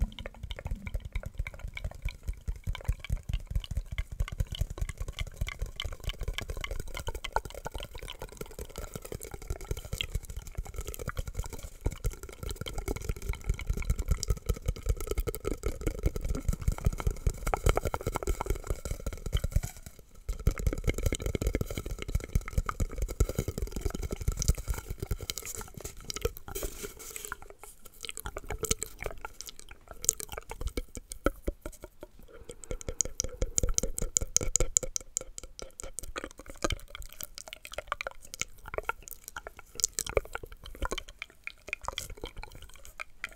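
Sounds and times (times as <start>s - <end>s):
soft low hum: 0.0s - 1.6s
wet mouth clicks, smacks and moist pops: 0.0s - 43.3s.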